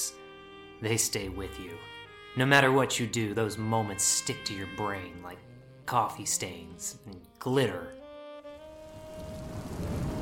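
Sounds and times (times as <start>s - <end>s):
speech: 0.8s - 8.0s
steady rain falling outdoors: 8.6s - 10.2s.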